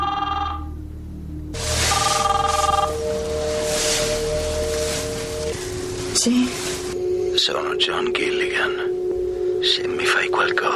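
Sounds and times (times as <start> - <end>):
steady hiss: 1.3 - 10.7
telephone ringing in the middle of the night: 1.8 - 3.0
speech: 6.2 - 6.6, 7.4 - 9.0, 9.6 - 10.7.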